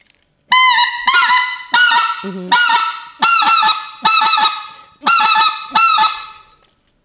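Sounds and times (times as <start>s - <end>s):
single-reed goose call being blown: 0.5s - 6.6s
person murmuring: 2.2s - 2.6s
speech: 2.2s - 2.9s.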